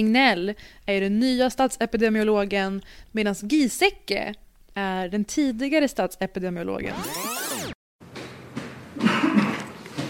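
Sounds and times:
speech: 0.0 - 7.3
man coughing while climbing a spiral staircase: 9.0 - 9.8.

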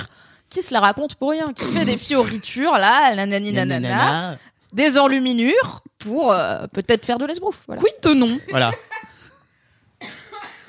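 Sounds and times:
speech: 0.5 - 9.0
harsh raspy coughing: 1.6 - 2.4, 10.0 - 10.6.

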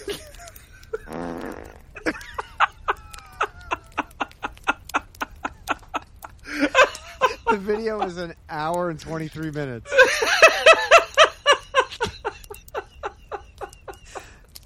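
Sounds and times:
laughter: 0.0 - 1.2, 1.8 - 14.6
short buzzy fart: 1.0 - 2.0
speech: 7.5 - 10.1.

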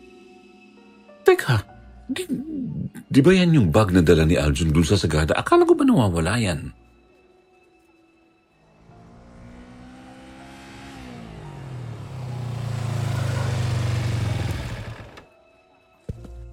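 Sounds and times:
speech: 1.3 - 6.8
small motor tricycle engine idling and revving: 8.6 - 15.3.

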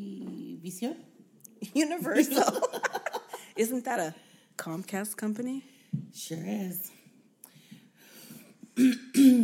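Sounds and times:
speech: 0.7 - 7.0, 8.8 - 9.4
laughter: 2.1 - 3.5
throat clearing: 8.7 - 9.4.

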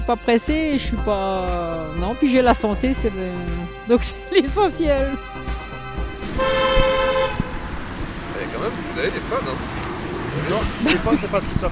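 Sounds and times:
busy traffic rumble: 0.0 - 11.7
speech: 0.1 - 5.6, 8.7 - 9.8, 10.4 - 11.7
car horn blast: 5.3 - 7.9
laughter: 10.5 - 11.7.

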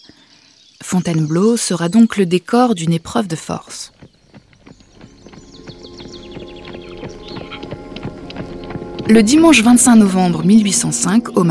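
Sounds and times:
speech: 0.9 - 4.0, 9.1 - 11.4
horse hooves clip-clopping: 3.5 - 11.3
low rumbling background: 4.7 - 11.4.

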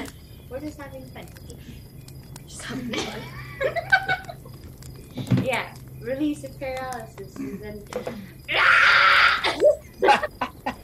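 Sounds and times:
speech: 0.6 - 3.9, 5.5 - 9.6
laughter: 2.8 - 4.6, 9.4 - 10.8
person screaming: 8.5 - 10.2.

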